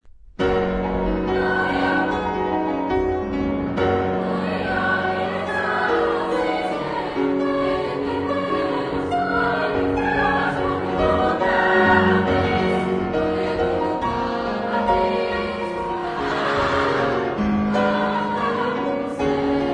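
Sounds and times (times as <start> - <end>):
piano version of a mass: 0.2 - 19.7.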